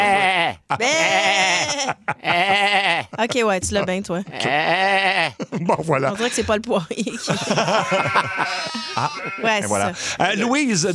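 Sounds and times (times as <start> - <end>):
laughter: 0.0 - 4.0, 5.2 - 10.6
person imitating a sheep bleating: 0.0 - 5.4, 7.8 - 9.8
speech: 0.5 - 10.9.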